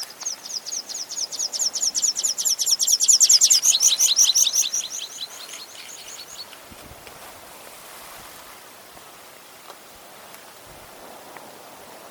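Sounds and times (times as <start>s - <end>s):
water pipit singing: 0.2s - 6.5s.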